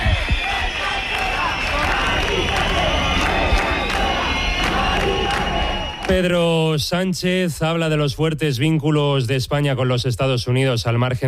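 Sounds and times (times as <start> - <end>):
crowd of protesters shouting on a city street during an eviction: 0.0 - 6.1
speech: 6.1 - 11.2.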